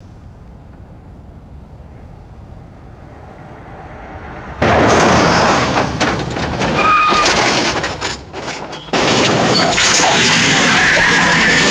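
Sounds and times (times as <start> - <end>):
vehicle crash: 1.9 - 11.6
long tire squeal: 3.8 - 11.6.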